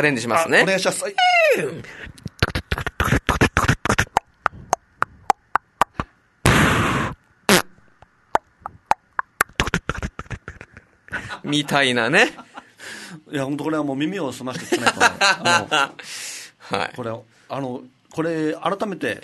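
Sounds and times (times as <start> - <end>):
speech: 0.0 - 2.3, 11.5 - 12.4, 13.3 - 19.2
performer vocally imitating gunshots with sharp popping bursts: 2.2 - 6.8, 7.5 - 10.9
performer vocally imitating a fart with a rough noisy blast: 2.4 - 10.7
laughter: 10.4 - 12.8, 14.5 - 16.0.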